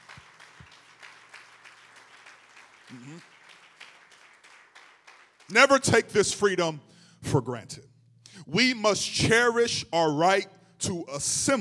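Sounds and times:
crowd applauding with many hands clapping: 0:00.0 - 0:06.1
speech: 0:02.9 - 0:03.4, 0:05.5 - 0:07.9, 0:08.5 - 0:11.5.

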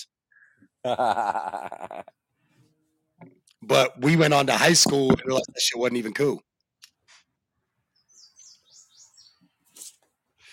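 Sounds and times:
laughter: 0:00.8 - 0:02.2
speech: 0:00.8 - 0:02.2, 0:03.6 - 0:06.5
birds chirping and twittering: 0:07.8 - 0:10.5.

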